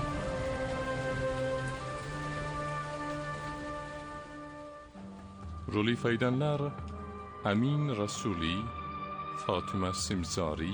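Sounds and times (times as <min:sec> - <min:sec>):
steady rain: 0:00.0 - 0:08.0
speech: 0:05.7 - 0:08.8, 0:09.4 - 0:10.7.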